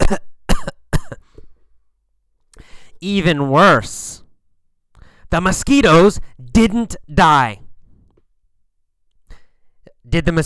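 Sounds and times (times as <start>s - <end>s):
man coughing: 0.0s - 1.4s
speech: 0.1s - 0.3s, 3.0s - 4.2s, 5.3s - 7.6s, 10.1s - 10.4s.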